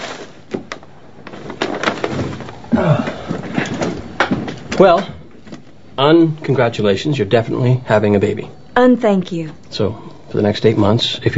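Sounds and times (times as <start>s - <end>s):
stack of papers shoved off a chair onto the floor in a doctor's office: 0.0s - 5.6s
speech: 4.8s - 5.2s, 6.0s - 11.3s.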